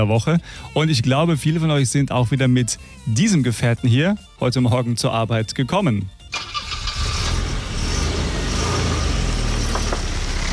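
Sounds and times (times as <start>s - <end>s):
speech: 0.0s - 6.2s
car engine starting and revving: 6.3s - 10.5s.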